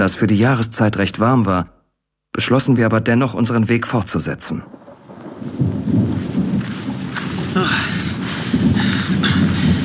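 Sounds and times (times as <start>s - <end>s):
speech: 0.0s - 1.8s, 2.4s - 4.8s, 7.6s - 8.0s
rain: 4.0s - 9.8s
low rolling thunder: 4.5s - 9.8s.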